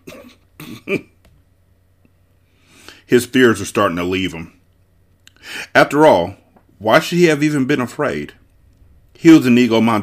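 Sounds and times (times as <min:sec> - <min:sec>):
man coughing after gulping rough brandy from a bottle: 0:00.0 - 0:01.2
speech: 0:00.7 - 0:01.2, 0:03.1 - 0:04.6, 0:05.8 - 0:08.4, 0:09.2 - 0:10.0.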